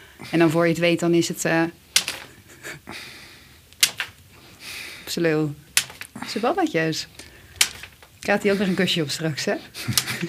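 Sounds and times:
soft hiss: 0.0s - 10.2s
speech: 0.2s - 1.8s, 5.2s - 5.6s, 6.3s - 7.2s, 8.2s - 10.2s
leather whip smacks: 3.8s - 4.2s, 5.8s - 6.2s, 7.6s - 8.0s
laughter: 9.8s - 10.2s.

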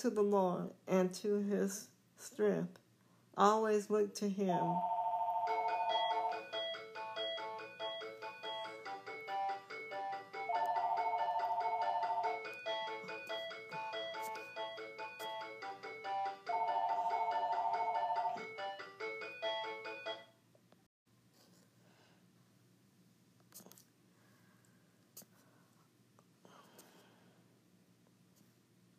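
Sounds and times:
speech: 0.0s - 2.8s, 3.4s - 5.0s
melodic phone ringtone: 4.8s - 20.3s.

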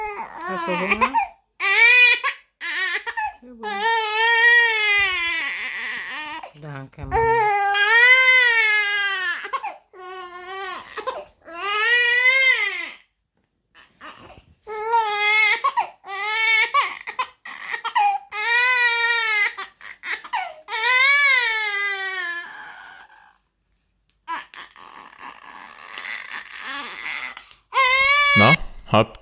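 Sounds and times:
baby girl crying while being dressed and oiled: 0.0s - 6.5s, 7.1s - 13.1s, 13.8s - 23.3s, 24.3s - 28.7s
speech: 0.5s - 1.3s, 3.5s - 3.9s, 28.9s - 29.2s.

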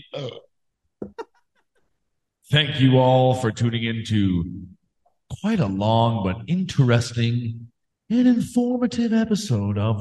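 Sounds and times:
person burping: 0.0s - 1.2s
speech: 0.2s - 0.4s, 2.5s - 4.7s, 5.4s - 9.9s.

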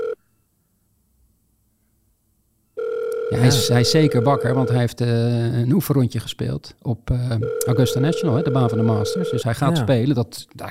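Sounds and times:
ringback tone of an outgoing telephone call: 2.8s - 4.8s, 7.4s - 9.5s
speech: 3.3s - 10.7s.

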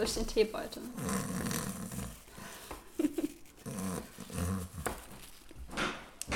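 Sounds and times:
speech: 0.0s - 1.7s
voice imitating snoring: 0.8s - 2.5s, 3.6s - 5.0s.

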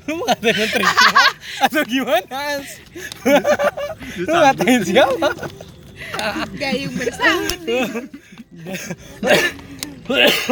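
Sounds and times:
laughter: 0.0s - 10.5s
speech: 0.1s - 10.5s
person coughing harshly: 9.2s - 10.5s.

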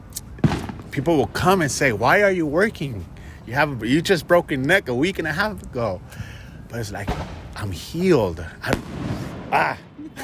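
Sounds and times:
firework bangs outside: 0.4s - 2.1s, 7.0s - 8.0s, 8.6s - 10.0s
speech: 1.0s - 9.8s.

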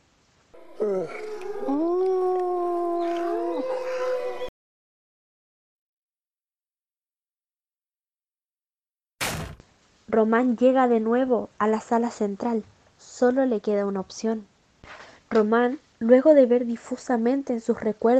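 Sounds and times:
pack of running wolves howling in chorus: 0.6s - 4.5s
brief sharp bang: 9.2s - 9.6s
speech: 10.1s - 18.1s.

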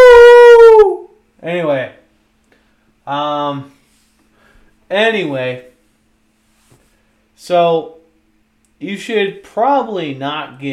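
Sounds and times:
person imitating a wolf howl: 0.0s - 1.2s
speech: 3.1s - 3.8s, 4.9s - 5.7s, 7.4s - 8.0s, 8.8s - 10.7s.

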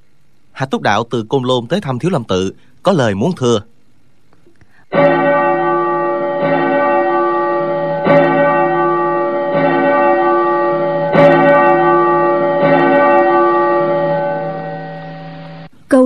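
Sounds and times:
speech: 0.6s - 3.8s, 4.9s - 5.1s
many large temple bells ringing together in a mountain forest: 4.9s - 15.7s.

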